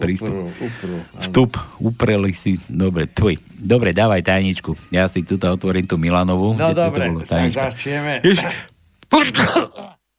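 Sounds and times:
speech: 0.0 - 9.9
person sneezing: 9.2 - 10.0.

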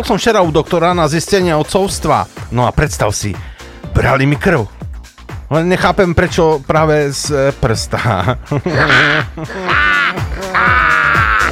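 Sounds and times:
speech: 0.0 - 4.8, 5.5 - 10.3
laughter: 7.9 - 11.4
person imitating crow caws: 8.8 - 11.4.

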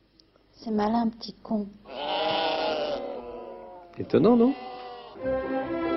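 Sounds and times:
speech: 0.6 - 2.1, 4.0 - 5.8
sheep bleating: 1.9 - 5.2.

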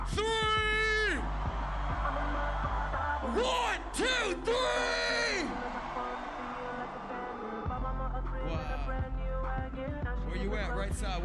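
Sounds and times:
thumping bass beat: 0.0 - 11.2
large crowd roaring and screaming: 0.6 - 8.2.

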